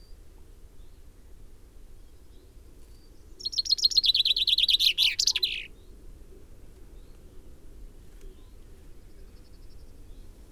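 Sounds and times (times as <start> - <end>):
common chaffinch singing: 3.4 - 5.7.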